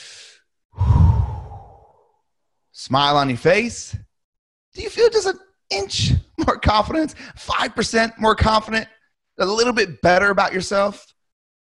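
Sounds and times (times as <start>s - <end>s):
deep breath during a posture and confidence exercise: 0.0s - 2.2s
speech: 2.8s - 4.1s, 4.8s - 11.6s.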